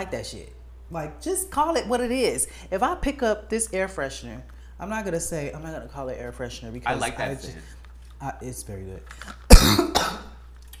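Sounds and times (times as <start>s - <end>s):
speech: 0.0s - 10.3s
person coughing after choking on saliva: 9.5s - 10.4s.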